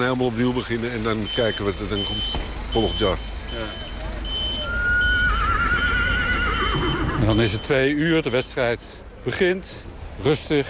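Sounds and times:
speech: 0.0s - 3.9s, 6.8s - 10.6s
horses whinnying on a quiet match day outside a stadium: 4.7s - 7.7s.

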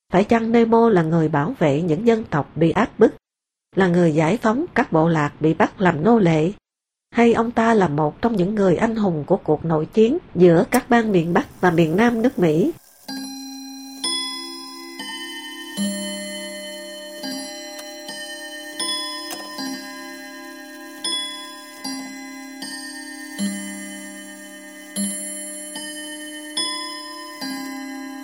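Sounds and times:
speech: 0.1s - 12.8s
clock striking eight o'clock with bell-like chimes: 10.8s - 28.2s.

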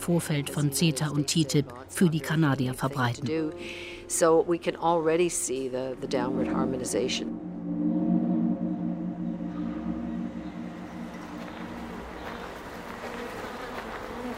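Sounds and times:
speech: 0.0s - 7.4s
swarm of honey bees buzzing: 3.6s - 14.3s.

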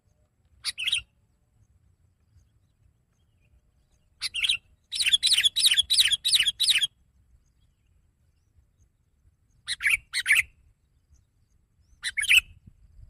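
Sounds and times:
sooty-headed bulbul singing: 0.6s - 1.1s, 2.3s - 12.7s.

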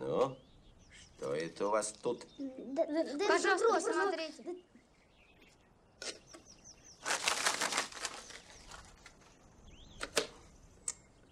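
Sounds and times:
speech: 1.6s - 4.7s
cartoon bird flapping its wings: 7.0s - 9.3s
sharp clicks: 10.0s - 11.1s.

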